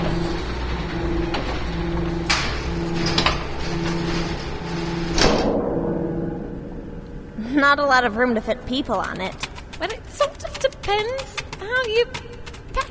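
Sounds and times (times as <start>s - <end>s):
door motor hum and whine: 0.0s - 5.4s
heavy environmental protection doors of a loading bay sliding shut: 0.0s - 6.2s
speech: 7.6s - 10.3s, 10.9s - 12.2s.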